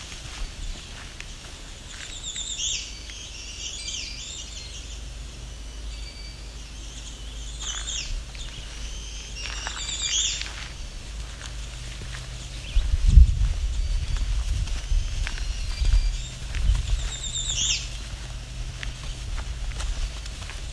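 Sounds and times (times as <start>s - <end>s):
faint rustling steps: 0.0s - 3.2s, 7.6s - 20.7s
black-throated green warblers singing: 0.0s - 20.7s
steady low outdoor rumble: 0.0s - 20.7s.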